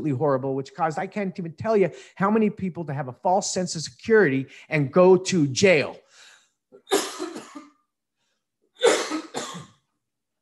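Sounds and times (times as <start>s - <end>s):
speech: 0.0s - 6.0s
person coughing harshly: 6.8s - 7.8s, 8.8s - 9.9s.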